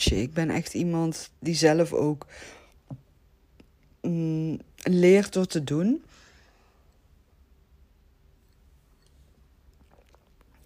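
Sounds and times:
speech: 0.0s - 3.0s, 4.0s - 6.1s
quiet steady room hiss: 0.8s - 9.8s
person sipping water: 8.5s - 10.6s
wet mouth clicks: 9.7s - 10.6s.

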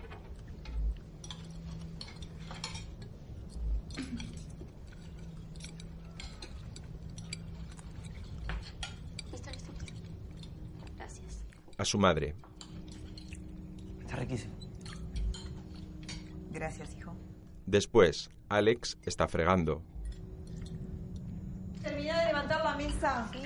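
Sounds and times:
faint chewing: 0.0s - 16.5s, 19.8s - 21.9s
steady low hum: 0.0s - 23.4s
cutlery clinking on plates while eating: 0.2s - 10.6s, 14.5s - 16.4s
speech: 11.8s - 12.5s, 17.7s - 19.9s.

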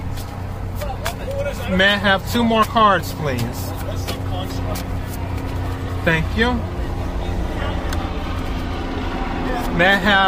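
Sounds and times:
helicopter flying past: 0.3s - 10.2s
speech: 1.5s - 5.0s, 6.0s - 6.8s, 9.6s - 10.2s.

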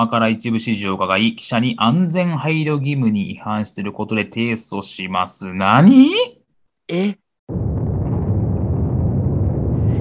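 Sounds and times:
speech: 0.0s - 7.6s
cartoonish explosion sound effect: 7.5s - 9.9s
loud steady bass-heavy rumble of cartoon explosion: 7.5s - 9.9s.

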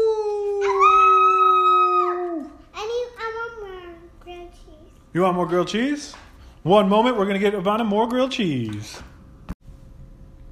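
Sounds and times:
person imitating a wolf howl: 0.0s - 2.6s
speech: 5.2s - 9.1s.

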